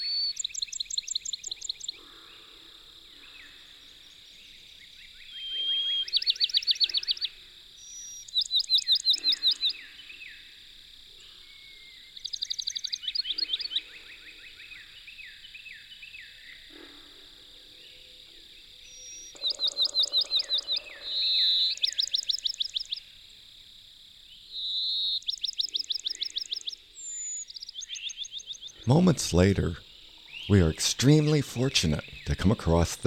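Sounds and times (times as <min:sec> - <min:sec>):
Pinewoods Sparrow singing whistles and trills: 0:00.0 - 0:02.2, 0:03.2 - 0:10.4, 0:11.4 - 0:13.9, 0:18.8 - 0:23.0, 0:24.5 - 0:33.0
speech: 0:28.9 - 0:29.8, 0:30.5 - 0:33.0.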